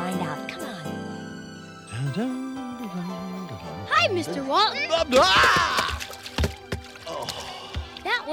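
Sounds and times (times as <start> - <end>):
speech: 2.2 - 2.4, 4.0 - 5.7
man's foot landing in a bucket of water: 4.9 - 8.1
water dripping: 4.9 - 8.3
sloshing knocks of a bucket of water: 5.0 - 8.0.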